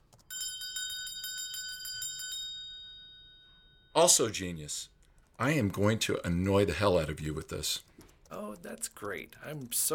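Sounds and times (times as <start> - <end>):
small bell shaken and ringing: 0.3 - 4.4
speech: 4.0 - 9.9.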